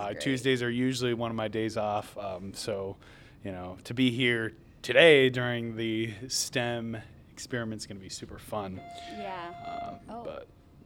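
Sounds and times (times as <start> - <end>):
low noise: 0.0 - 10.8
speech: 0.1 - 10.6
electronic phone ringtone from an incoming call: 8.8 - 10.2.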